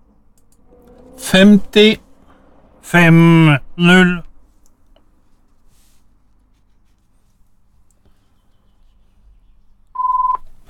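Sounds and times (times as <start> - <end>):
speech: 1.3 - 2.0, 2.9 - 4.3
telephone keypad dialing tone: 10.0 - 10.4.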